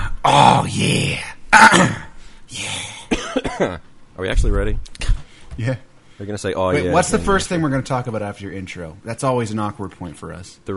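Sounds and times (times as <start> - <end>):
speech: 0.3 - 2.8, 3.6 - 10.7
raspy throat clearing: 2.9 - 3.8.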